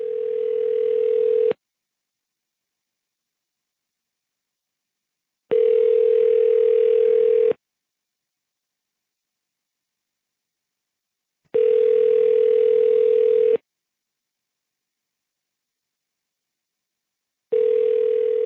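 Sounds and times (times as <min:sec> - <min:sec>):
telephone ringback tone of an unanswered call: 0:00.0 - 0:01.6, 0:05.5 - 0:07.5, 0:11.6 - 0:13.6, 0:17.5 - 0:18.4.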